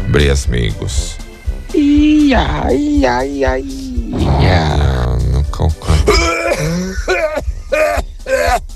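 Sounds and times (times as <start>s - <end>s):
speech: 0.2s - 5.0s, 5.6s - 8.7s
rough rasping coughs: 4.2s - 8.7s.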